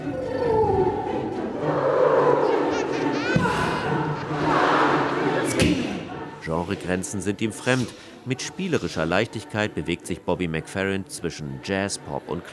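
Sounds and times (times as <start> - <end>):
large concert audience singing along with the performer: 0.0 - 12.5
laughter: 2.4 - 6.1, 7.6 - 9.2
speech: 6.7 - 12.5.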